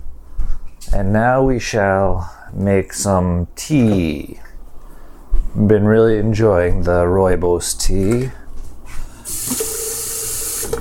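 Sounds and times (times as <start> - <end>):
speech: 0.9 - 4.5, 5.5 - 8.4
water running from a kitchen sink tap: 9.3 - 10.8.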